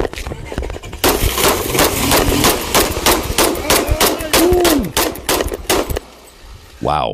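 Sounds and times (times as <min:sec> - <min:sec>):
handgun gunshots: 0:01.0 - 0:06.1.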